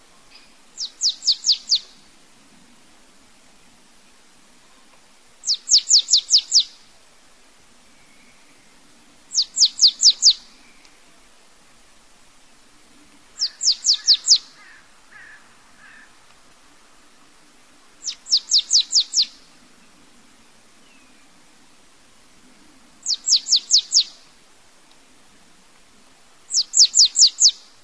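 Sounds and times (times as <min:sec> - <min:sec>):
marsh tit singing rapid sharp high notes: 0:00.3 - 0:02.0, 0:05.4 - 0:06.7, 0:09.3 - 0:11.0, 0:13.4 - 0:15.3, 0:18.0 - 0:19.4, 0:23.0 - 0:24.2, 0:26.5 - 0:27.7.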